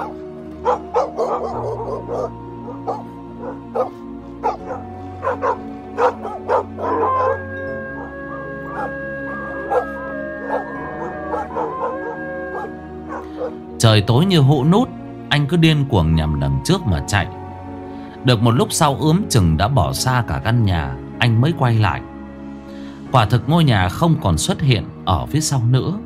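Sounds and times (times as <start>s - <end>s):
pack of dogs barking as if giving chase: 0.0s - 13.7s
speech: 14.0s - 17.4s, 18.2s - 22.1s, 23.1s - 26.0s.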